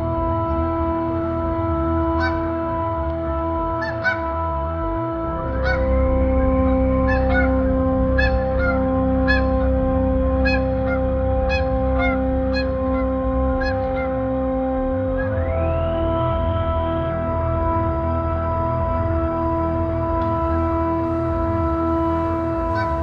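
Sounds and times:
steady humming tones: 0.0 - 23.0
Canada Goose flock honking while flying low overhead: 2.2 - 2.6, 3.8 - 4.7, 5.4 - 15.5, 22.0 - 23.0.

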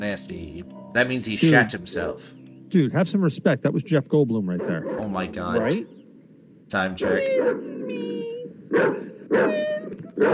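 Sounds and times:
speech: 0.0 - 6.0, 6.7 - 8.1, 8.7 - 10.3
dog barking and yelping: 7.0 - 10.3.

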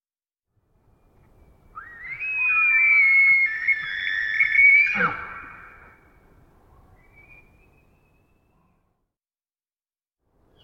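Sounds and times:
wild elk screaming in the Pacific Northwest, Washington, United States: 1.9 - 6.0.

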